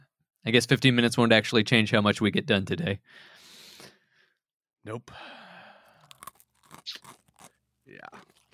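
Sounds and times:
speech: 0.4s - 3.4s, 4.8s - 5.4s, 7.9s - 8.3s
slow crunching and chewing while eating breakfast: 5.9s - 8.5s.

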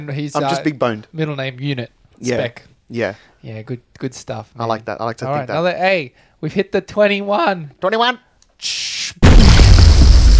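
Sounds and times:
speech: 0.0s - 9.2s
short hiss: 8.6s - 9.2s
loud explosion sound effect: 9.2s - 10.3s.

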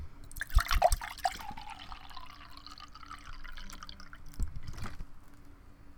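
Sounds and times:
liquid pouring into a container: 0.2s - 5.0s.

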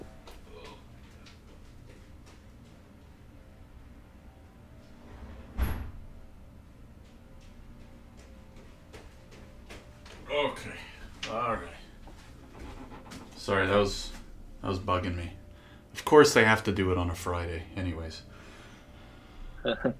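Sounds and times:
door shutting: 5.1s - 6.1s, 12.4s - 13.5s
speech: 10.4s - 11.7s, 13.5s - 15.4s, 16.0s - 18.4s, 19.6s - 19.9s.

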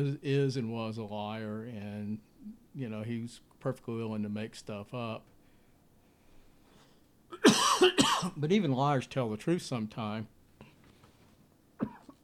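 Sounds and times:
speech: 0.0s - 5.3s, 7.4s - 10.4s
person coughing: 7.3s - 8.4s, 11.8s - 12.2s.

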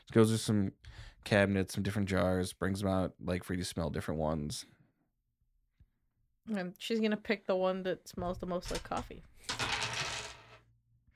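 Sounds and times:
speech: 0.1s - 4.8s, 6.4s - 9.6s
dice clattering and tumbling across a hard surface: 9.4s - 10.6s.

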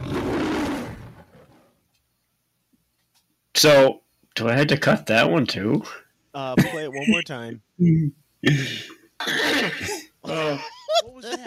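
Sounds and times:
speech: 3.6s - 11.4s
laughter: 6.6s - 7.2s, 9.8s - 11.4s
person coughing during a blooper: 6.6s - 7.2s, 8.4s - 10.7s.

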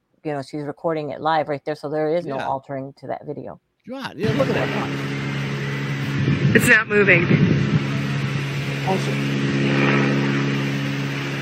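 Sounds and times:
speech: 0.2s - 5.3s, 6.3s - 7.8s, 8.8s - 10.0s
propeller airplane engine hum from a played video: 4.2s - 11.4s.

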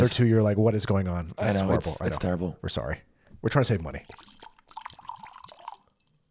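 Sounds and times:
speech: 0.0s - 4.4s
liquid glugging as poured from bottle: 3.8s - 6.2s.

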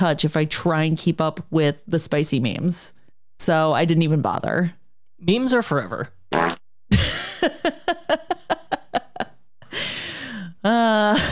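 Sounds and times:
speech: 0.0s - 6.5s, 7.4s - 7.9s
comic fart noises voiced by a person: 6.3s - 6.7s
laughter: 6.9s - 9.4s.

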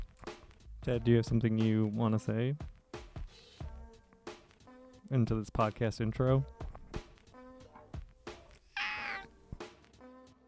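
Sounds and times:
speech: 0.8s - 2.7s, 5.1s - 6.6s
cat meowing: 8.4s - 9.6s.

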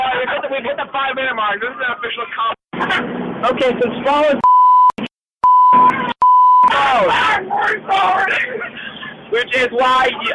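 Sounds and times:
laughter: 0.0s - 1.1s, 8.4s - 9.3s
speech: 0.6s - 2.6s, 3.4s - 4.5s, 9.4s - 10.3s
steady high censor bleep: 4.4s - 6.7s
loud overlapping excited voices and shouting: 6.6s - 8.6s.

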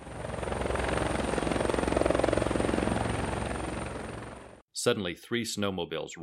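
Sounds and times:
helicopter landing in a clearing: 0.0s - 4.6s
speech: 4.8s - 6.2s.

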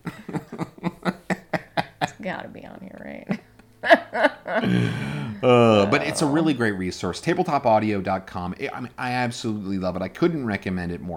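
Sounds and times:
laughter: 0.0s - 2.2s, 3.8s - 6.6s
speech: 2.2s - 11.1s
person imitating a cat vomiting: 4.6s - 6.4s.

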